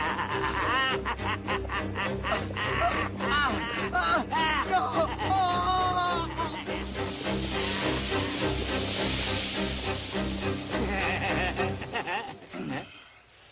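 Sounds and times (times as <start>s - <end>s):
laughter: 0.0s - 7.0s, 10.6s - 13.0s
oil boiling and hissing in a cauldron: 6.6s - 13.4s.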